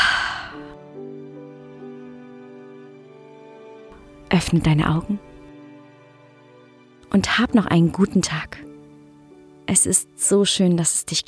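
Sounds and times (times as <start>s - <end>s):
deep breath in and out: 0.0s - 0.8s
speech: 4.4s - 5.3s, 7.1s - 8.7s, 9.7s - 11.2s.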